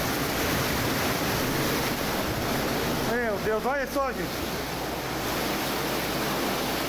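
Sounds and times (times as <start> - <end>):
rushing floodwater behind a house: 0.0 - 6.8
speech: 3.5 - 4.5.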